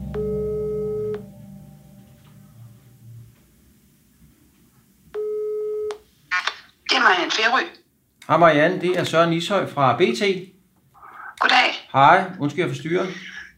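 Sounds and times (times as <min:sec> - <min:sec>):
electronic ringback tones of an outgoing telephone call: 0:00.0 - 0:01.2, 0:05.2 - 0:05.9
speech: 0:07.0 - 0:10.5, 0:11.9 - 0:13.4.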